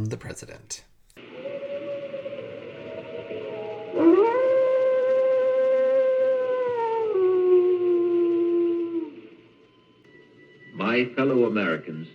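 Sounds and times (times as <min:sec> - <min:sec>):
speech: 0:00.0 - 0:00.9, 0:11.0 - 0:12.1
wolves howling: 0:01.6 - 0:09.5.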